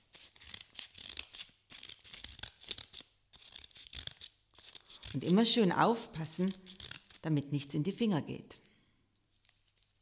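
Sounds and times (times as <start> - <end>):
scissors cutting folded paper freehand to make a paper star: 0.0 - 7.2
speech: 5.2 - 8.6.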